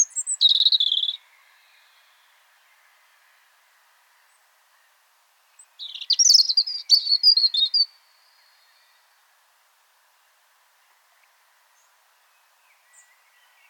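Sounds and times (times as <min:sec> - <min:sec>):
European robin Erithacus rubecula singing: 0:00.0 - 0:02.3, 0:05.5 - 0:09.1, 0:11.8 - 0:13.6.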